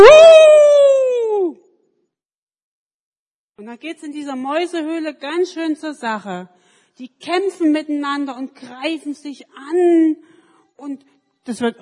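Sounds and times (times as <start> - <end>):
person imitating a wolf howl: 0.0 - 1.6
speech: 3.7 - 11.8.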